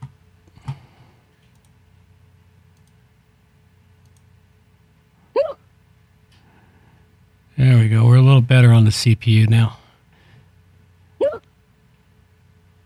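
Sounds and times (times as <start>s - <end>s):
low steady hum: 0.0s - 12.8s
abrupt hiccups: 5.3s - 5.7s, 11.2s - 11.5s
speech: 8.4s - 9.8s.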